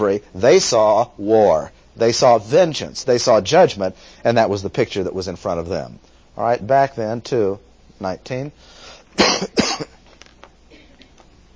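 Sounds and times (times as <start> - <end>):
speech: 0.0 - 9.9
harsh coughs: 9.2 - 10.0, 10.7 - 11.2.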